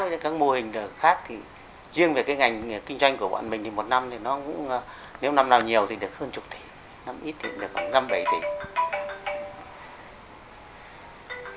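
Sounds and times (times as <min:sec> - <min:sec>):
speech: 0:00.1 - 0:08.8
phone electronic ringtone chiming: 0:07.4 - 0:09.9, 0:11.3 - 0:11.5.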